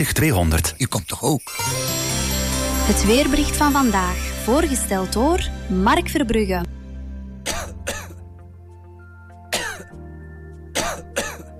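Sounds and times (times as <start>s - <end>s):
speech: 0.0s - 2.1s, 2.9s - 6.8s
dry coughing: 7.4s - 8.2s, 9.5s - 10.0s, 10.8s - 11.5s
throat clearing: 7.5s - 8.2s, 9.5s - 9.9s, 10.8s - 11.5s.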